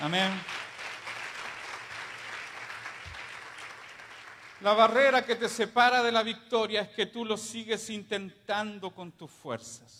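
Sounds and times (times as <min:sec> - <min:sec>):
speech: 0:00.0 - 0:00.6, 0:04.6 - 0:09.9
congregation applauding: 0:00.0 - 0:05.1.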